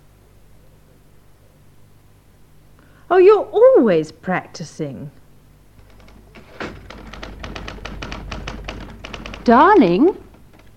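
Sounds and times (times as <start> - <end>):
speech: 3.1 - 5.2, 9.5 - 10.2
typewriter keys clattering: 5.8 - 10.7.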